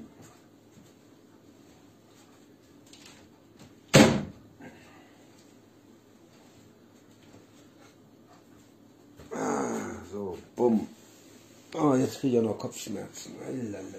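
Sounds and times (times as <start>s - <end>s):
tilt window shutting with a sharp loud thud: 3.9s - 4.3s
speech: 10.6s - 10.9s, 11.8s - 13.9s.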